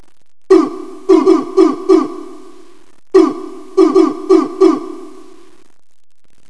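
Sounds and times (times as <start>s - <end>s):
rhythmic beat: 0.5s - 2.5s, 3.2s - 5.4s.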